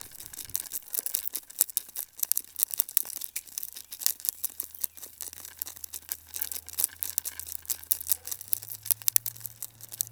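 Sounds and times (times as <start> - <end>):
carpenter bee inside wood: 0.0 - 10.1.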